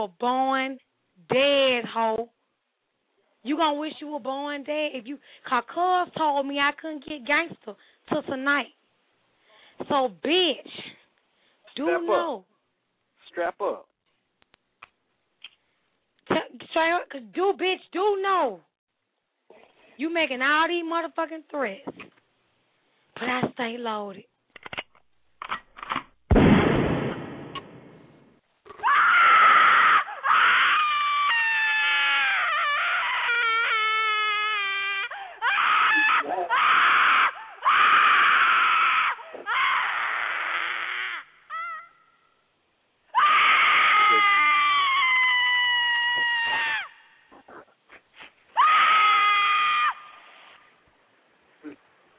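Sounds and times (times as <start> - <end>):
speech: 0.0 - 2.4, 3.4 - 8.8, 9.8 - 11.0, 11.8 - 12.5, 13.3 - 13.9, 16.4 - 18.7, 20.0 - 22.2, 23.2 - 24.3
person screaming and wailing: 28.7 - 42.0, 43.2 - 47.0, 48.6 - 50.2.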